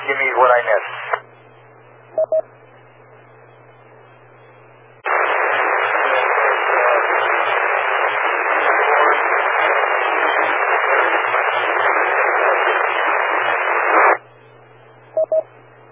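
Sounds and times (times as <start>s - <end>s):
ham radio white noise static during a radio net check-in: 0.0s - 3.7s, 5.0s - 14.3s
speech: 0.4s - 1.0s, 2.2s - 2.6s
brief electronic beeps: 2.1s - 2.5s, 15.1s - 15.5s.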